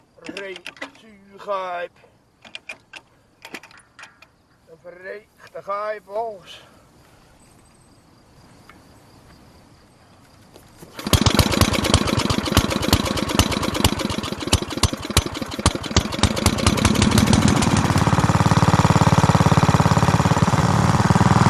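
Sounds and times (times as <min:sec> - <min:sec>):
speech: 0:00.4 - 0:02.1, 0:04.7 - 0:06.8
Swiss moped engine starting up and running: 0:10.9 - 0:21.4.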